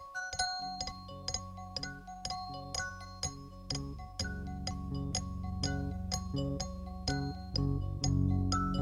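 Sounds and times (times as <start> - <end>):
bells collage in F: 0.2 - 8.8.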